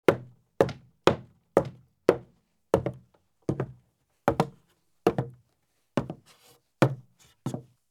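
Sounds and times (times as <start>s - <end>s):
heavy boots walking across a wood porch: 0.1s - 5.4s, 6.0s - 6.2s, 6.8s - 7.7s
heavy boots walking up steps: 0.1s - 5.4s.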